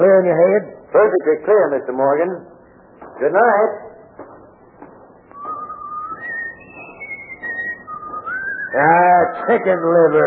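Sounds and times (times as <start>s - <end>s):
speech: 0.1s - 2.5s, 3.2s - 3.8s, 8.7s - 10.2s
person whistling a wandering tune: 5.3s - 9.5s.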